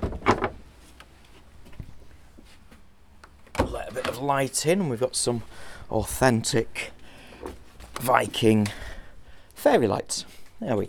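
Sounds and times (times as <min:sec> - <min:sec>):
wooden door of a small longhouse opening: 0:00.0 - 0:00.7, 0:03.3 - 0:04.3
speech: 0:04.2 - 0:08.9, 0:09.6 - 0:10.8.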